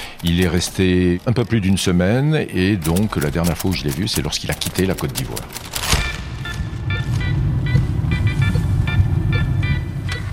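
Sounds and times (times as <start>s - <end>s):
speech: 0.2s - 5.7s
faint clicks and ticks: 2.8s - 6.0s
moving car interior road noise with engine and tire drone: 6.0s - 10.3s.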